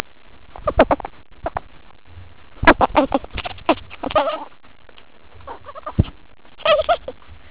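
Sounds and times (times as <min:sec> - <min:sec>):
ferret chuckling: 0:00.5 - 0:01.7, 0:02.6 - 0:04.5, 0:05.4 - 0:07.2.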